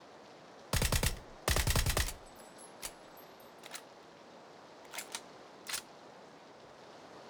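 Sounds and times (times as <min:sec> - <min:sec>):
VSS rifle firing full auto: 0:00.8 - 0:02.3.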